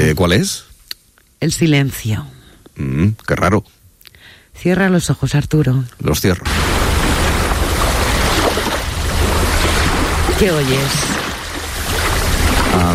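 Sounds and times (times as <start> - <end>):
speech: 0.1 - 0.7, 1.4 - 3.8, 4.6 - 6.8, 10.4 - 11.1, 12.7 - 12.9
sea surf washing: 6.5 - 12.9.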